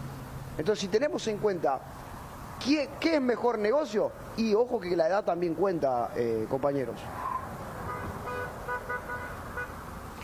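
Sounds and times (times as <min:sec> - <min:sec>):
road noise: 0:00.0 - 0:10.2
speech: 0:00.6 - 0:07.3
car horns honking at a street celebration after a football match: 0:07.3 - 0:10.0.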